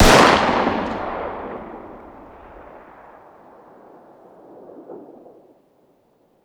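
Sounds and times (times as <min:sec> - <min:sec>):
distant 9x19 pistol firing outdoors: 0:00.0 - 0:03.2.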